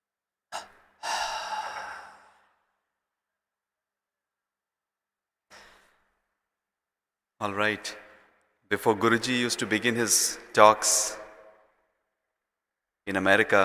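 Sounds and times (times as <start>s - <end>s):
deep inhaling during a breathing exercise: 0.6s - 2.8s
speech: 7.4s - 8.0s, 8.7s - 11.2s, 13.1s - 13.6s.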